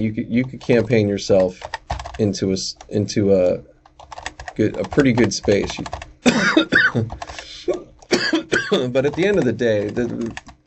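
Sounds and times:
speech: 0.0s - 3.7s, 4.6s - 6.0s, 6.6s - 7.4s, 8.7s - 10.6s
man coughing: 6.2s - 9.0s.

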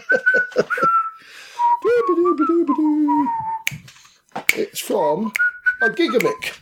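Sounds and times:
person whistling a wavering tune: 0.0s - 3.9s, 5.2s - 6.6s
quick sharp clicks or snaps: 3.7s - 4.7s
speech: 4.8s - 6.6s.

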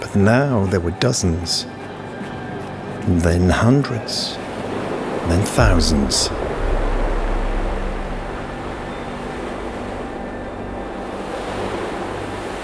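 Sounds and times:
speech: 0.1s - 1.9s, 3.1s - 4.4s, 5.3s - 6.4s
ocean waves crashing: 4.4s - 12.6s
wind hiss: 5.4s - 12.2s.

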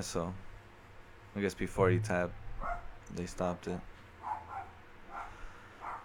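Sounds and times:
speech: 0.0s - 0.5s, 1.3s - 4.4s
low rumble: 1.2s - 5.1s
dog barking outside: 2.3s - 3.0s, 4.2s - 6.0s.

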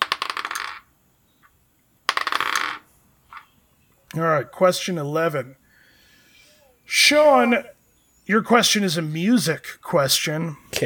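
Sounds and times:
dice clattering and tumbling across a hard surface: 0.0s - 0.9s, 2.1s - 3.5s
speech: 4.2s - 5.6s, 6.9s - 10.8s.

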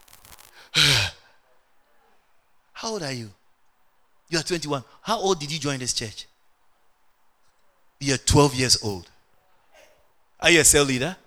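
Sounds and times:
heavy breath out, partly voiced like a sigh: 0.4s - 1.4s
speech: 2.8s - 3.4s, 4.3s - 6.3s, 8.0s - 9.1s, 10.4s - 11.2s.

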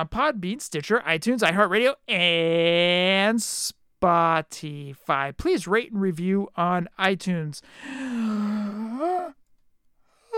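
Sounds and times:
speech: 0.0s - 8.3s
person yawning loudly: 7.8s - 9.4s.

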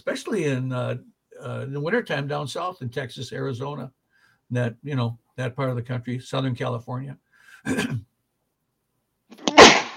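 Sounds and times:
speech: 0.0s - 8.1s
person sneezing: 7.7s - 8.0s.

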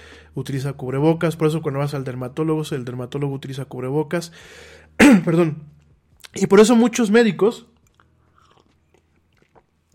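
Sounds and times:
speech: 0.4s - 7.7s
soft wet mouth noises: 5.8s - 6.4s, 7.8s - 9.9s
person sipping coffee: 7.8s - 9.9s
swallowing: 7.8s - 9.9s.

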